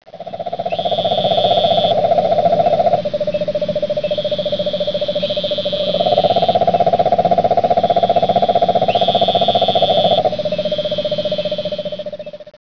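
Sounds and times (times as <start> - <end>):
giant toad calling: 0.1 - 12.5.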